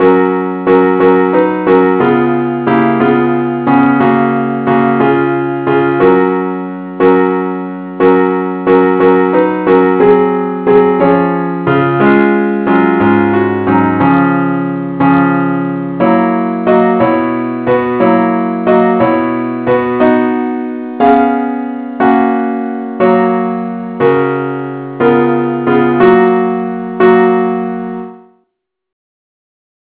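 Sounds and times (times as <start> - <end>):
keyboard parts: 0.0 - 28.3.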